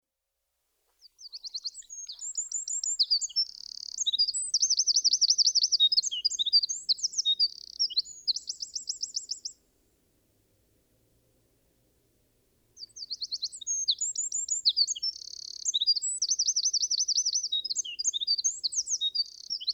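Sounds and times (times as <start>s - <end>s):
Eurasian wren Troglodytes troglodytes singing with rapid notes and rattling trills: 1.1s - 9.6s, 12.8s - 19.7s.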